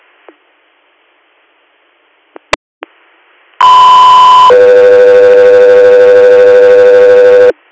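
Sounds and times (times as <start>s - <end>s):
loud two-tone radio paging alert: 3.6s - 7.5s.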